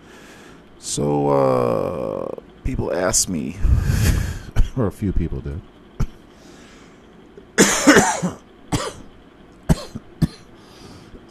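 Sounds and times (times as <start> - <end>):
speech: 0.9 - 5.7
smoker coughing harshly after a smoke break: 7.6 - 9.0, 9.7 - 10.5.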